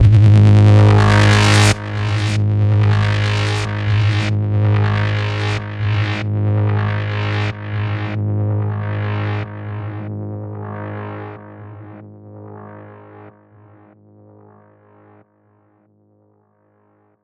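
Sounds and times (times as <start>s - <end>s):
psytrance synth zap in G sharp: 0.0s - 10.0s
psytrance synth filter sweeps: 0.0s - 10.1s.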